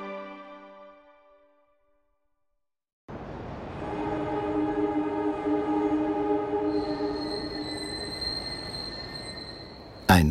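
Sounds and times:
S-Bahn commuter train rumbling at the station in Starnberg: 3.1 - 10.2
S-Bahn commuter train wheels squealing at the station in Starnberg: 5.9 - 10.2.

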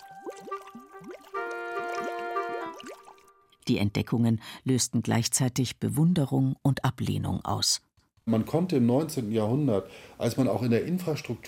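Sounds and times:
sulphurous thermal spring water bubbling in Bad Gögging: 0.0 - 3.6
speech: 3.7 - 11.4.

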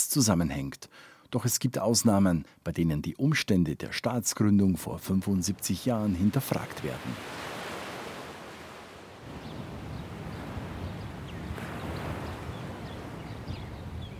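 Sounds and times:
speech: 0.1 - 7.5
faint wind: 4.7 - 14.1
gentle Mediterranean Sea waves washing onto sandy shore of Dor Beach in Israel: 5.5 - 13.4.

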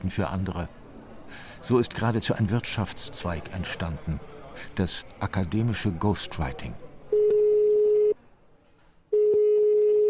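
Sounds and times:
speech: 0.0 - 6.9
telephone ringback tones: 7.1 - 8.2, 9.1 - 10.0.

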